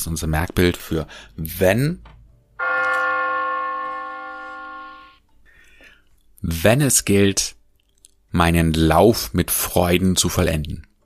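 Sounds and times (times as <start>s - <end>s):
speech: 0.0s - 2.2s, 6.4s - 7.6s, 8.3s - 10.9s
deep bell strike from a large clock tower bell: 2.6s - 5.2s.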